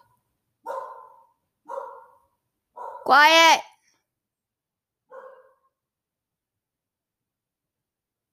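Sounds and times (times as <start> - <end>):
pet dog barking: 0.6 - 3.2, 5.1 - 5.8
speech: 3.1 - 3.7.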